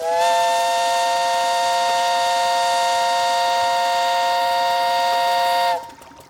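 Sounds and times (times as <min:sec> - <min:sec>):
steamboat steam whistle blowing at Blue Mountain Lake in the Adirondacks: 0:00.0 - 0:06.0.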